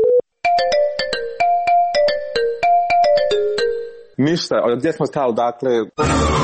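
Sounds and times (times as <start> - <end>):
bright electronic mobile phone ringtone signalling an incoming call: 0.0 - 4.2
speech: 4.2 - 6.3.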